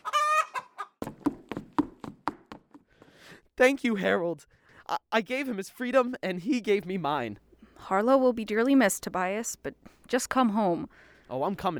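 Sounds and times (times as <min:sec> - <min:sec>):
chicken squawking: 0:00.0 - 0:01.0
speech: 0:03.6 - 0:11.7.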